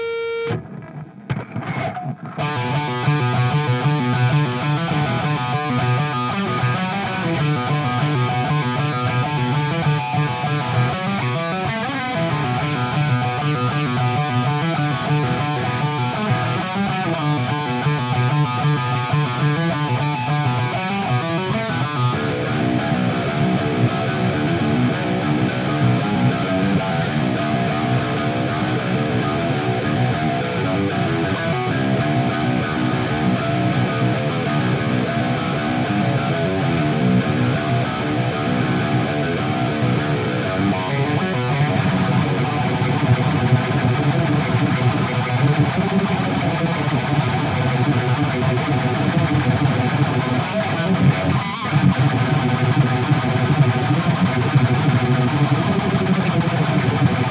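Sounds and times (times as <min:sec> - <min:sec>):
guitar scratch: 0:00.0 - 0:57.2.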